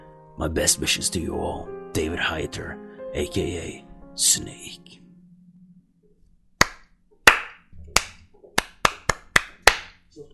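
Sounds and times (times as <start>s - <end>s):
speech: 0.4s - 5.0s
one person clapping slowly: 6.6s - 10.0s.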